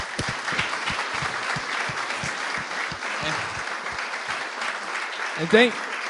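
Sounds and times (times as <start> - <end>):
applause from a sizable audience: 0.0 - 6.0
speech: 5.4 - 5.9.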